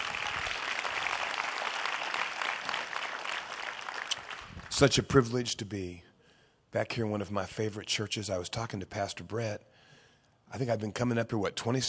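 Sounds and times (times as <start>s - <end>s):
large crowd applause: 0.0s - 4.7s
speech: 4.8s - 6.1s, 6.8s - 9.6s, 10.5s - 11.8s.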